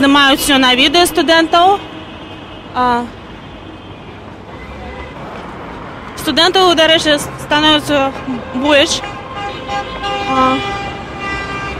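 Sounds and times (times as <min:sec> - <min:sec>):
speech: 0:00.0 - 0:01.9, 0:02.8 - 0:03.2, 0:06.3 - 0:09.1, 0:09.7 - 0:10.8
street traffic noise: 0:00.0 - 0:11.7
car horns honking in support: 0:00.1 - 0:05.3, 0:08.2 - 0:11.7.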